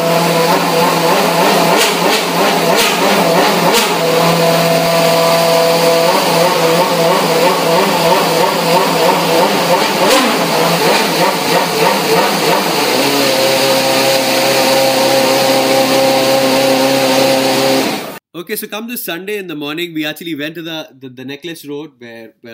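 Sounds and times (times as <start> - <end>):
Formula One car engine firing up and revving: 0.0 - 18.2
speech: 18.5 - 22.5.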